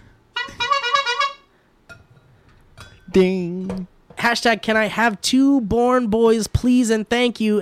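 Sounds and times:
car horn honks: 0.4s - 1.5s
speech: 3.1s - 7.6s.

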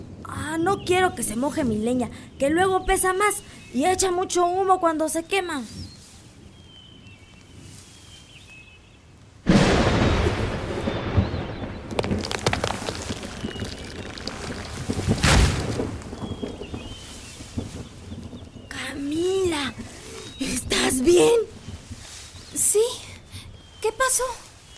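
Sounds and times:
faint birds outdoors: 0.0s - 9.4s, 10.5s - 15.0s, 15.6s - 24.7s
speech: 0.6s - 5.8s
lightning strike cracking on a tree: 9.5s - 18.8s
long crackling thunder rumble: 9.5s - 22.8s.

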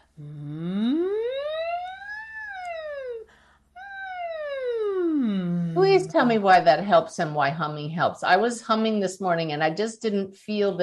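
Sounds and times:
voice imitating a siren while showering: 0.2s - 6.2s
speech: 6.0s - 10.8s.

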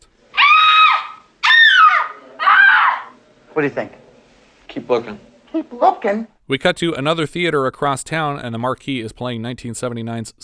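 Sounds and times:
women screaming in a film scene: 0.3s - 3.2s
speech: 3.6s - 4.0s, 4.8s - 10.4s.

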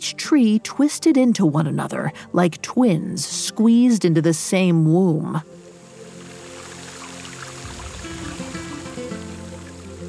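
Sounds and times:
speech: 0.3s - 5.6s
water streaming and dripping from branches: 5.4s - 10.0s.

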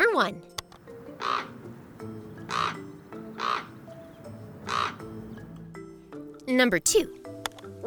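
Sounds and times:
speech: 0.2s - 0.6s, 6.5s - 7.2s
common raven croaking caws: 0.9s - 5.4s.

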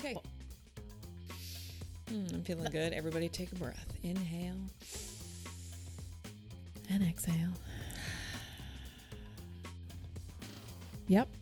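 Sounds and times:
speech: 0.0s - 0.4s, 2.1s - 5.0s, 6.9s - 7.9s, 11.1s - 11.3s
steady spray hiss: 4.8s - 6.1s.

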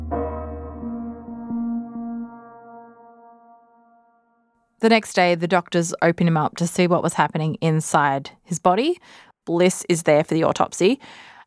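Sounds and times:
deep bell tolling announcing a death: 0.0s - 4.2s
speech: 4.8s - 11.3s.

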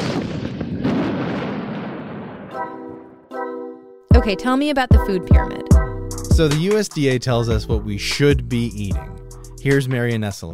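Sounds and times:
huge cannon blast: 0.0s - 3.0s
speech: 4.2s - 5.8s, 6.4s - 10.5s.

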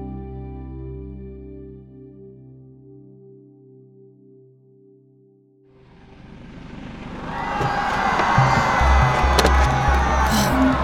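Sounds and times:
dense crowd roar of many voices: 7.3s - 10.8s.

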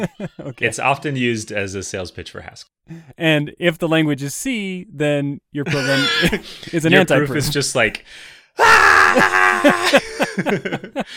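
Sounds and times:
laughter: 0.0s - 0.8s, 9.0s - 11.1s
speech: 0.0s - 11.1s
person screaming: 5.8s - 6.2s, 8.6s - 10.0s.

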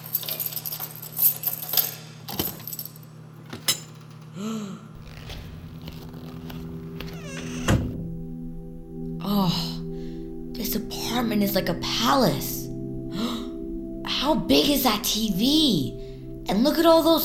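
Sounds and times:
keys jangling: 0.0s - 4.3s
low steady hum: 0.0s - 17.2s
speech: 4.4s - 4.8s, 11.2s - 12.5s, 14.3s - 17.2s
apartment door opening: 5.0s - 8.1s.

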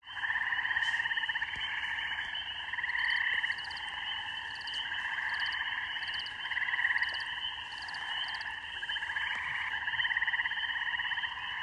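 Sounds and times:
spring peepers and other frogs trilling at a rural beaver pond in the evening: 0.0s - 11.6s.

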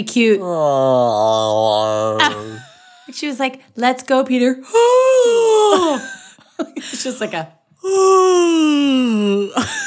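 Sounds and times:
speech: 0.0s - 9.8s
person yawning exaggeratedly: 0.6s - 2.8s, 4.7s - 6.1s, 7.8s - 9.6s.

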